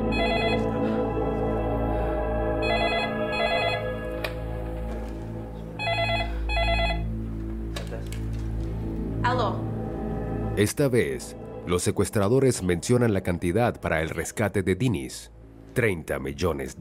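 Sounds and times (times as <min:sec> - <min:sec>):
low drone: 0:00.0 - 0:16.4
telephone ringing with an incoming call: 0:00.1 - 0:00.8, 0:02.6 - 0:04.2, 0:05.8 - 0:07.2
speech: 0:10.6 - 0:16.7.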